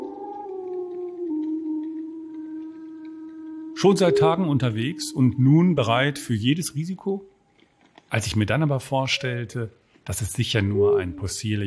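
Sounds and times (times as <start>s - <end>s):
wolf howling: 0.0s - 7.1s, 10.5s - 11.6s
speech: 3.8s - 7.3s, 8.1s - 11.6s.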